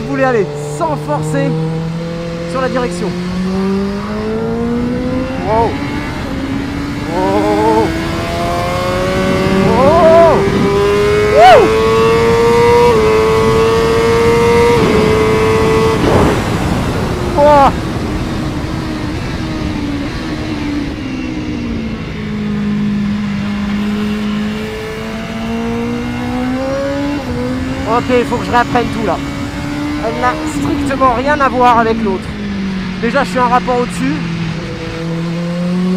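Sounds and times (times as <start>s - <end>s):
motorcycle engine droning as the bike is ridden: 0.0s - 35.9s
speech: 0.1s - 1.8s, 2.5s - 3.8s, 5.5s - 5.8s, 11.4s - 12.0s, 27.9s - 29.3s, 30.0s - 32.3s, 33.0s - 34.3s.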